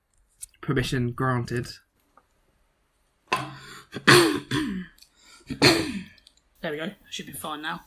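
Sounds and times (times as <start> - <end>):
speech: 0.7 - 1.9, 3.9 - 4.9, 5.5 - 7.8
person clearing throat: 3.3 - 6.2
person coughing: 3.4 - 6.2.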